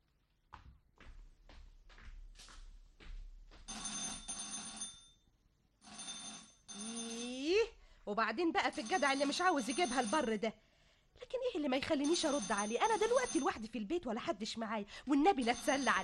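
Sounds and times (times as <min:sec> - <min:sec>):
old-style telephone bell ringing in a house: 0:03.7 - 0:07.8, 0:08.5 - 0:10.4, 0:12.0 - 0:13.8, 0:15.3 - 0:16.0
speech: 0:08.1 - 0:10.6, 0:11.7 - 0:16.0.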